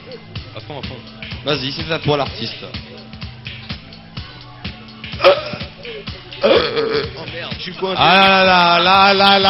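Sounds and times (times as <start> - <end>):
steady rhythmic beat: 0.0 - 9.4
speech: 0.1 - 2.8, 6.4 - 9.4
person burping into a microphone: 5.2 - 5.7, 6.4 - 7.2.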